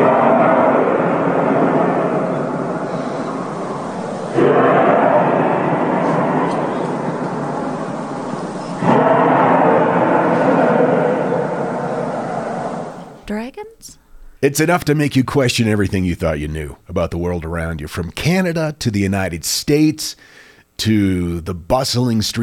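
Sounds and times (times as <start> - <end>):
sky trumpets booming trumpet-like sky sound: 0.0 - 13.2
speech: 14.4 - 22.4.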